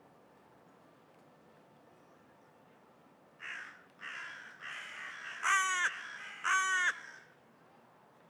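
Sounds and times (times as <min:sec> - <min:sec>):
carrion crow Corvus corone cawing: 0:03.4 - 0:07.3.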